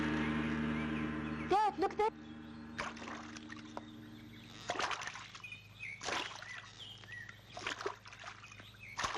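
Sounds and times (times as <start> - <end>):
birds chirping: 0.0 - 9.1
speech: 1.8 - 3.3
rowboat strokes splashing through river water: 2.7 - 9.1.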